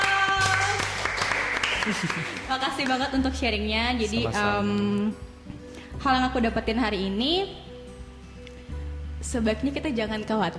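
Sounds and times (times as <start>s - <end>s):
applause thanking a speaker: 0.0s - 3.2s
laughter: 1.7s - 2.6s
speech: 1.8s - 5.3s, 6.0s - 7.7s, 9.2s - 10.5s.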